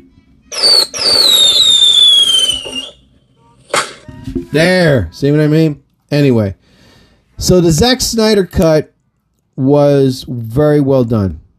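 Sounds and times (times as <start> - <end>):
speech: 0.5 - 1.8, 4.4 - 6.6, 7.4 - 8.9, 9.6 - 11.4
firework burst: 0.5 - 3.0
whistling firework rocket: 0.5 - 3.0.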